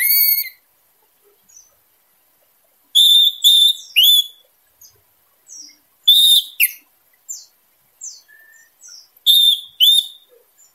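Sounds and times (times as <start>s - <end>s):
Orange-headed thrush singing loud clear whistled notes: 0.0s - 0.6s, 2.9s - 4.5s, 5.5s - 10.4s.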